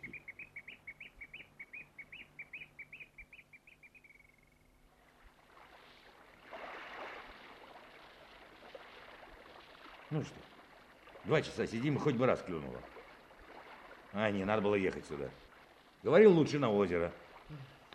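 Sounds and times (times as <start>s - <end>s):
nightingale singing: 0.0s - 4.8s
rushing splashing water: 4.9s - 17.9s
speech: 10.1s - 10.5s, 11.2s - 13.0s, 14.1s - 15.4s, 16.0s - 17.8s.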